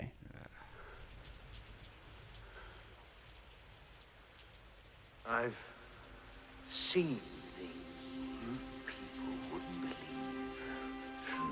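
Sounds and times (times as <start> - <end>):
steady rain falling in Vancouver: 0.2 - 11.4
speech: 5.3 - 5.8, 6.7 - 7.8.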